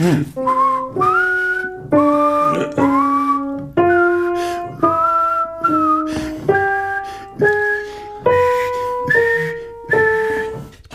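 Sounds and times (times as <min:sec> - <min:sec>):
speech: 0:00.0 - 0:01.2
person whistling an angular twelve-tone melody: 0:00.0 - 0:10.8
breaths between whistled phrases: 0:04.2 - 0:04.7, 0:06.0 - 0:09.8.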